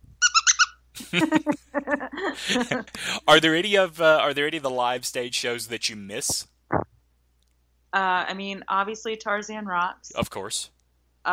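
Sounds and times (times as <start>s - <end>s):
dog squeaky toy being squeezed: 0.2s - 0.8s
laughter: 1.0s - 3.6s
speech: 1.1s - 6.9s, 7.9s - 11.3s.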